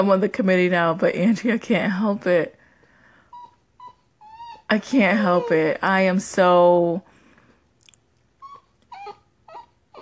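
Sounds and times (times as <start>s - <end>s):
speech: 0.0s - 2.6s, 4.7s - 7.1s
dog whining in high nasal whimpers: 3.2s - 5.9s, 8.4s - 10.0s.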